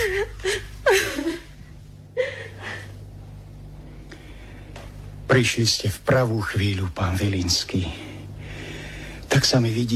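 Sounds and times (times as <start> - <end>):
woman crying and whimpering: 0.0 - 1.5
woman sobbing shakily: 0.0 - 3.0
speech: 5.4 - 8.1, 9.4 - 9.9.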